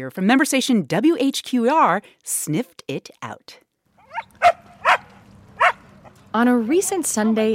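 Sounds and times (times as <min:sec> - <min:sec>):
speech: 0:00.0 - 0:03.6, 0:06.3 - 0:07.5
dog barking at a public pool in North Carolina: 0:04.0 - 0:05.8.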